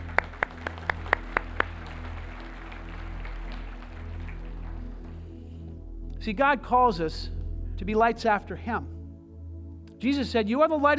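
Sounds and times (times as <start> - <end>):
sharp hand claps: 0.0 - 5.3
steady low hum in a quiet room: 2.8 - 10.0
speech: 6.2 - 9.0, 10.0 - 10.9.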